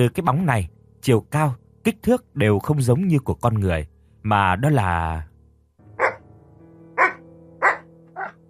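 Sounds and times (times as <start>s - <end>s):
speech: 0.0s - 5.3s
white dog barking: 6.0s - 6.2s, 7.0s - 8.4s.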